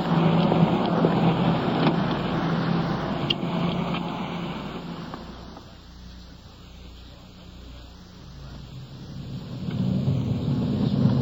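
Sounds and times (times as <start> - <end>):
car driving: 0.0 - 11.2
road noise: 0.0 - 11.2.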